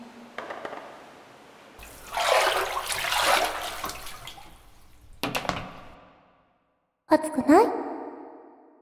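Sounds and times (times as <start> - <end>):
hot water poured over a body in a bath: 1.8 - 6.0
speech: 7.1 - 7.9.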